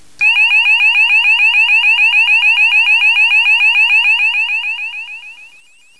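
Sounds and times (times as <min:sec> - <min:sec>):
tone sweeping 800-970 Hz: 0:00.2 - 0:05.9.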